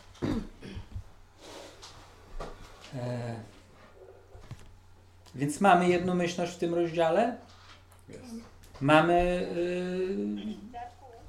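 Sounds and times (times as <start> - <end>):
faint room noise: 0.0 - 11.2
person coughing into an open microphone: 0.2 - 1.0
throat clearing into an open microphone: 0.2 - 1.0
speech: 3.0 - 3.5, 5.4 - 7.5, 8.1 - 10.6.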